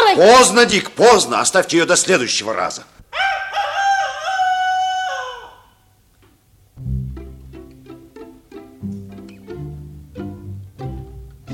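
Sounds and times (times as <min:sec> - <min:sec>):
speech: 0:00.2 - 0:03.2
rooster crowing outside a window: 0:03.1 - 0:05.9
short melodic tones: 0:06.8 - 0:11.5.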